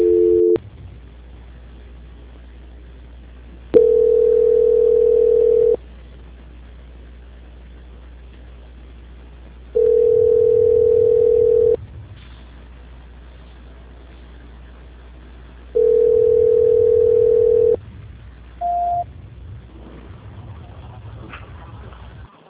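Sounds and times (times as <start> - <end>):
telephone call-transfer tones: 0.0 - 0.6, 3.8 - 5.8, 9.8 - 11.8, 15.8 - 17.8
low hum: 0.0 - 22.4.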